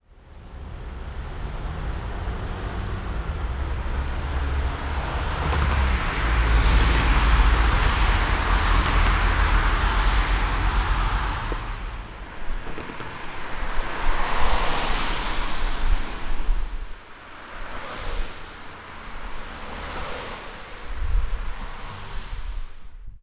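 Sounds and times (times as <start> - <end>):
cars: 0.0 - 23.2.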